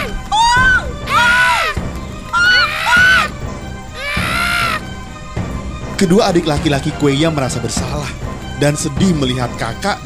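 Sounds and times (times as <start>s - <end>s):
two birds cawing back and forth: 0.0s - 5.2s
speech: 6.0s - 10.0s.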